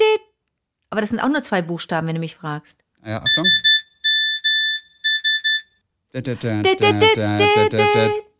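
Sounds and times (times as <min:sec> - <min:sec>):
speech: 0:01.0 - 0:03.7, 0:06.1 - 0:08.3
mobile phone SMS alert tone beeps: 0:03.2 - 0:05.8.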